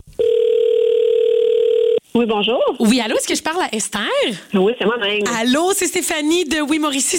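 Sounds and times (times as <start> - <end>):
telephone ringing tone for an outgoing call: 0.2 - 2.0
speech: 2.2 - 7.1.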